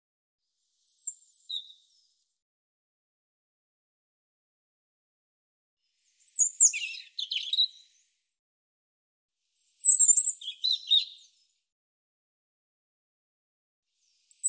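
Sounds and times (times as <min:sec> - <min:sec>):
European robin song of thin whistles and trills: 0:00.7 - 0:02.2, 0:06.0 - 0:08.1, 0:09.6 - 0:11.6, 0:14.0 - 0:14.4.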